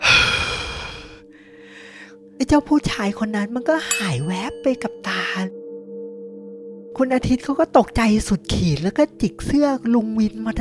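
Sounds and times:
voice imitating a loud heavy sigh: 0:00.0 - 0:02.1
speech: 0:02.4 - 0:05.6, 0:07.0 - 0:10.5.

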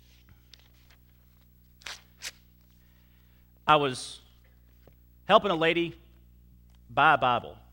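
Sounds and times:
paper rustling as someone searches for a sheet: 0:00.0 - 0:02.7
speech: 0:03.7 - 0:04.2, 0:05.3 - 0:06.0, 0:06.9 - 0:07.6.

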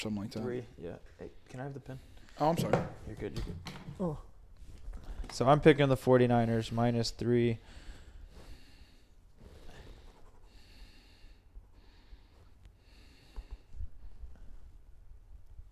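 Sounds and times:
speech: 0:00.0 - 0:04.3, 0:05.3 - 0:07.8
heavy breathing into a microphone: 0:07.6 - 0:14.8.

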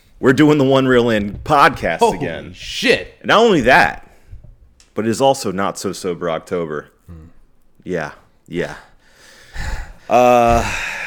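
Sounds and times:
speech: 0:00.2 - 0:04.0, 0:05.0 - 0:08.9, 0:09.6 - 0:11.0
heavy breathing: 0:09.0 - 0:11.0.

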